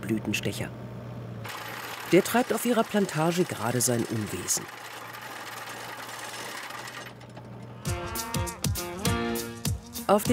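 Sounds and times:
speech: 0:00.1 - 0:04.9, 0:10.1 - 0:10.3
cattle mooing on lush meadows by Lake Zurich: 0:07.8 - 0:09.6.

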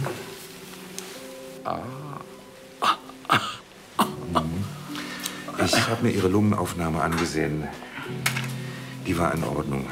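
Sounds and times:
speech: 0:01.6 - 0:02.2, 0:05.7 - 0:08.4, 0:09.1 - 0:09.9
person coughing: 0:02.8 - 0:04.6
person clearing throat: 0:02.8 - 0:04.7.

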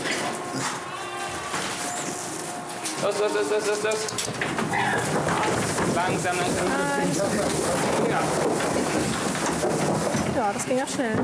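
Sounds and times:
goat bleating as it is let out ahead of farm animals: 0:00.0 - 0:03.0
rustling noisy background: 0:00.0 - 0:11.2
speech: 0:03.0 - 0:09.3, 0:10.4 - 0:11.2.

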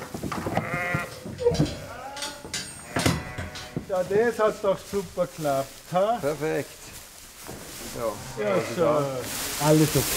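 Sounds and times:
faint rustling and shuffling of a sheep flock: 0:00.0 - 0:10.1
pregnant sheep bleating after transport: 0:00.5 - 0:03.9, 0:08.1 - 0:09.2
speech: 0:04.0 - 0:06.8, 0:07.4 - 0:10.1.

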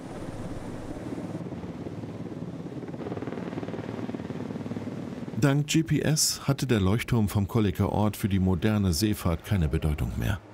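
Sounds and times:
helicopter engine and rotor droning: 0:00.0 - 0:05.4
speech: 0:05.4 - 0:10.5.

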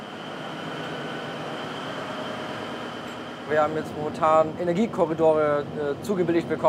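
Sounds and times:
faint high tonal whine of braking train: 0:00.0 - 0:05.8
freight train rolling along the rails: 0:00.0 - 0:06.6
speech: 0:03.5 - 0:06.6.

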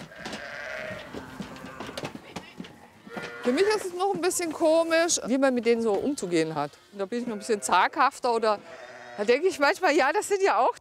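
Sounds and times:
sheep and lambs bleating in a barn: 0:00.0 - 0:02.1, 0:03.0 - 0:04.1, 0:05.7 - 0:10.0
speech: 0:03.4 - 0:10.7.

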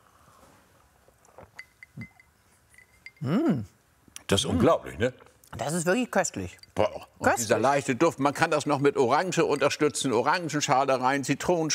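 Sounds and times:
glasses clinking in a toast: 0:01.4 - 0:03.4, 0:06.3 - 0:11.0
speech: 0:03.2 - 0:03.7, 0:04.3 - 0:11.7.

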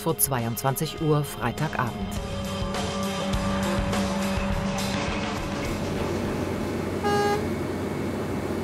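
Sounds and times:
speech: 0:00.0 - 0:02.4
heavy trucks hauling away old asphalt at roadworks: 0:02.6 - 0:08.6
roadworks machinery noise: 0:04.4 - 0:08.6
truck horn toot: 0:07.0 - 0:07.5.

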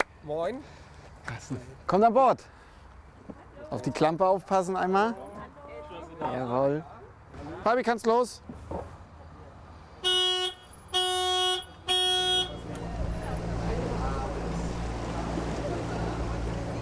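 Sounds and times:
speech: 0:00.2 - 0:02.6, 0:03.7 - 0:05.3, 0:06.2 - 0:06.9, 0:07.6 - 0:08.6
motorboat horn toots: 0:10.0 - 0:12.8
15 hp motorboat engine rumble in the Rostock city harbour: 0:10.1 - 0:16.8
water noise from a motorboat moving through a harbour: 0:12.4 - 0:16.8.

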